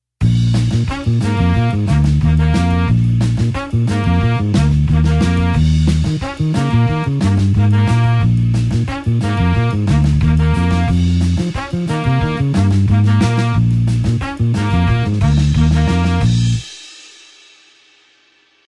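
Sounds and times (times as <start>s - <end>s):
blues horns in B flat over an eight-beat rhythm: 0.2s - 16.8s.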